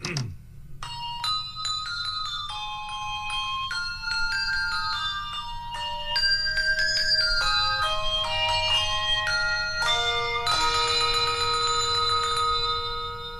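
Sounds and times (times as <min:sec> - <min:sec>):
ringing bells playing a Christmas melody in a chocolate TV commercial: 0:00.8 - 0:13.3.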